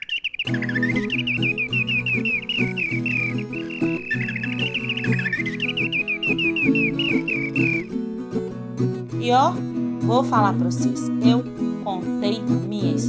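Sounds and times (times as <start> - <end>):
small bird chirping and trilling in flight: 0.0 - 8.0
speech: 0.4 - 0.8, 9.3 - 13.0
instrumental music: 0.5 - 13.0.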